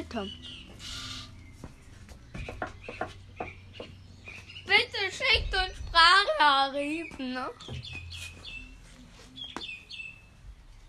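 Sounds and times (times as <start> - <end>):
birds chirping: 0.0 - 10.8
speech: 0.1 - 1.0, 6.4 - 7.9.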